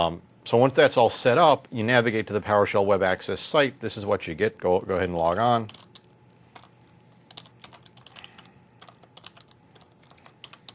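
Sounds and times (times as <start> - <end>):
speech: 0.0 - 5.8
low hum: 0.0 - 10.7
typing on a computer keyboard: 5.6 - 10.7.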